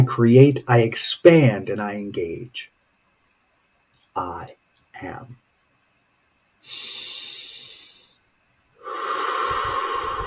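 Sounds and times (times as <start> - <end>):
speech: 0.1 - 2.7, 4.2 - 5.4, 6.6 - 7.1
powerful deep breath during a guided meditation: 6.6 - 8.2, 8.8 - 10.2.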